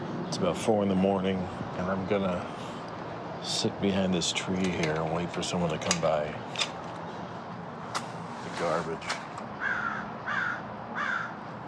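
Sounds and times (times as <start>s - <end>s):
low hum: 0.0s - 11.6s
speech: 0.3s - 2.7s, 3.4s - 6.8s, 8.6s - 9.2s
crow cawing outdoors at night: 9.6s - 11.6s.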